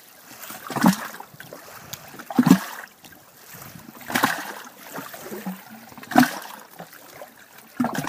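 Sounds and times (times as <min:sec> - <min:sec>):
small lake waves sloshing under a hollow log in a cove of Lake Crescent Washington: 0:00.0 - 0:08.0.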